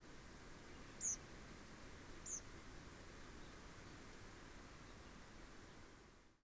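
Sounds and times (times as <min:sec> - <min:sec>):
constant background hiss: 0:00.0 - 0:06.4
nocturnal bird flight calls: 0:00.9 - 0:01.2, 0:02.2 - 0:02.5.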